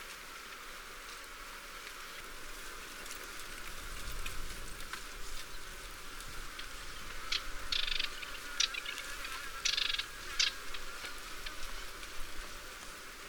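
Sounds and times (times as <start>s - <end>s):
steady background hiss: 0.0s - 13.2s
Hume's whitethroat rasping calls: 7.2s - 10.9s.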